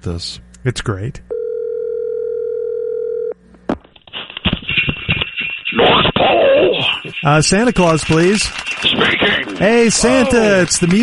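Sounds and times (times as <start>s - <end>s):
speech: 0.0s - 1.3s, 7.2s - 11.0s
telephone dial tone: 1.3s - 3.4s
busy crackly telephone line noise: 4.2s - 11.0s.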